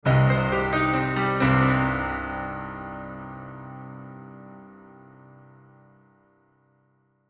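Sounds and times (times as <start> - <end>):
sad piano accent melody with delay effect: 0.0 - 6.4.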